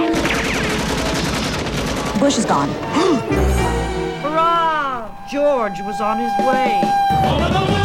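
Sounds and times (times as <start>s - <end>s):
gunshot sound effect for a pretend finger gun: 0.1s - 2.5s
speech: 2.2s - 4.0s, 5.3s - 7.7s.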